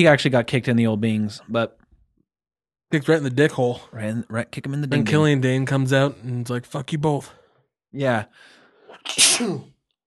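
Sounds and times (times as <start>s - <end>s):
speech: 0.0s - 1.8s, 2.9s - 9.7s
sneeze: 8.9s - 9.8s.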